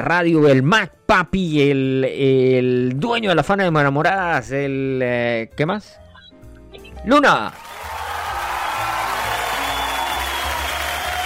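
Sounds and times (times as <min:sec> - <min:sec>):
speech: 0:00.0 - 0:06.0, 0:07.0 - 0:08.0
applause from a group welcoming a radio guest: 0:07.5 - 0:11.2.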